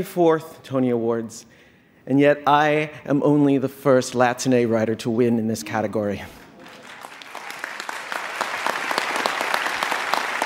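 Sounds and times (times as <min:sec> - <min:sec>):
speech: 0:00.0 - 0:06.4
audience applauding at an awards ceremony: 0:06.6 - 0:10.4.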